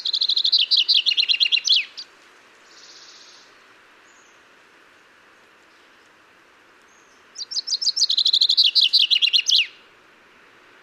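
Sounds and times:
common chaffinch Fringilla coelebs singing repeated chipping notes with flourish: 0.0s - 3.5s, 6.8s - 9.9s.

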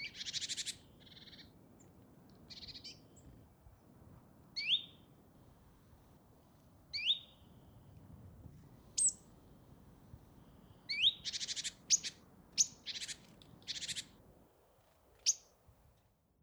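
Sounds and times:
great tit Parus major calls: 0.0s - 3.5s, 4.6s - 5.2s, 6.8s - 8.0s, 8.8s - 14.2s, 15.2s - 15.6s.

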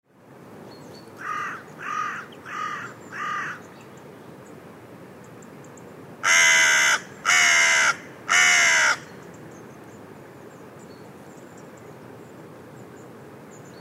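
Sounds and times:
carrion crow cawing: 1.2s - 3.6s, 6.2s - 9.1s.

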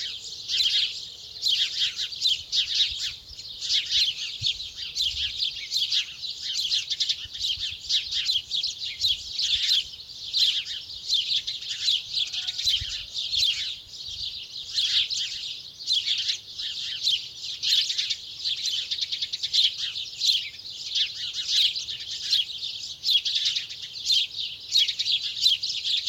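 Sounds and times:
many house sparrows Passer domesticus chattering: 0.0s - 26.0s.

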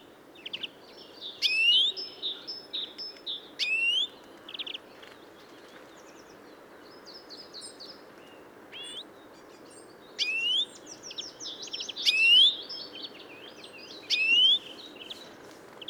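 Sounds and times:
European greenfinch Chloris chloris whistled calls: 1.4s - 2.2s, 10.2s - 12.8s, 14.1s - 14.7s.

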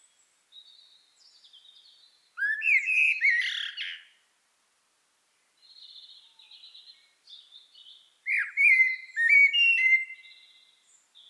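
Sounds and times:
Common blackbird Turdus merula singing fluted whistled notes: 2.4s - 4.1s, 5.7s - 11.2s.

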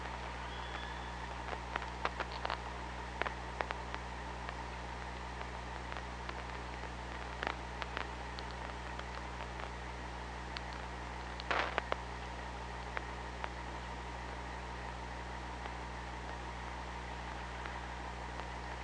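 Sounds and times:
constant low mechanical hum on hydrophone: 0.0s - 18.8s
killer whale thin tonal call underwater on hydrophone: 0.4s - 1.3s.

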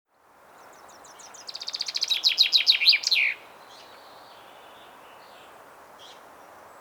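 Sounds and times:
common chaffinch Fringilla coelebs song: 0.6s - 5.4s.

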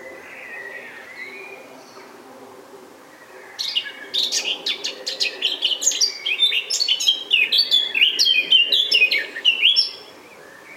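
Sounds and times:
Eurasian blackcap song of rich fluting warble and sharper chips: 3.6s - 10.1s.

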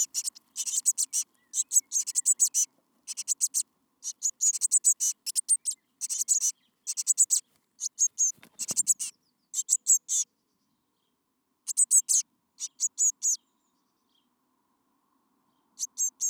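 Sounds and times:
Eurasian blue tit Cyanistes caeruleus calling: 0.0s - 10.2s, 11.7s - 13.4s, 15.8s - 16.2s.

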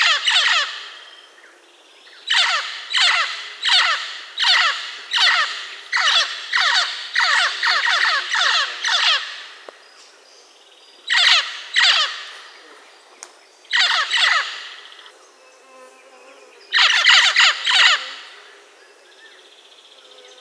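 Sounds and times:
bird giving harsh raspy calls: 0.0s - 1.1s, 2.2s - 9.6s, 11.1s - 12.6s, 13.7s - 15.1s, 16.7s - 18.5s.

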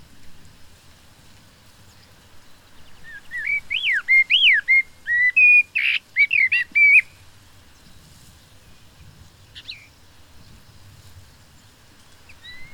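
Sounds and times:
common blackbird Turdus merula fluty whistled song: 1.9s - 7.2s, 9.5s - 10.0s, 12.3s - 12.7s.

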